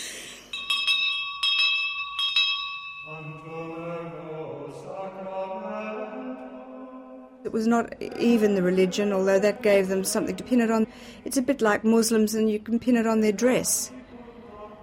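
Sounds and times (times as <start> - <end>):
school bell ringing: 0.4 - 3.7
speech: 7.5 - 14.0.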